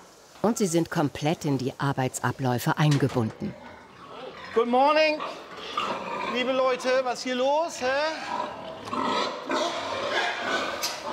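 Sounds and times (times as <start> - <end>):
speech: 0.4 - 3.6, 4.5 - 9.6
young sows grunting and squealing while feeding in individual feeding stalls: 3.3 - 11.1.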